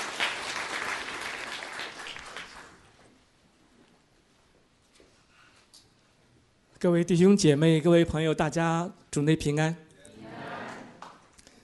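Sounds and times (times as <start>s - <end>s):
audience applause welcoming a speaker: 0.0s - 2.8s
speech: 6.8s - 9.8s.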